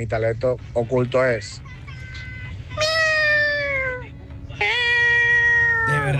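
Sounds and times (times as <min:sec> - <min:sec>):
speech: 0:00.0 - 0:01.8, 0:06.0 - 0:06.1
low rumble: 0:00.0 - 0:06.1
person imitating a cat meowing: 0:02.8 - 0:04.0, 0:04.6 - 0:06.1.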